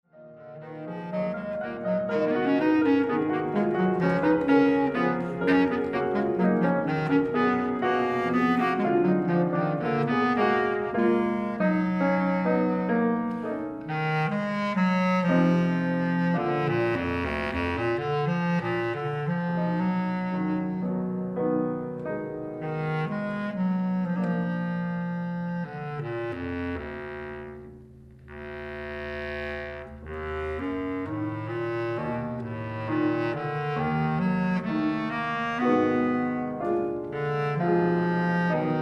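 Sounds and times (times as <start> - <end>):
bass clarinet playing a gypsy song: 0.1 - 38.8.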